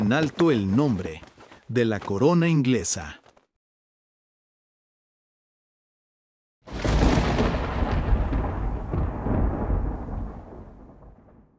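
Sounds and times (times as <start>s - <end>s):
speech: 0.1s - 3.2s
thunderclap and deep rumble in a storm: 6.7s - 11.5s.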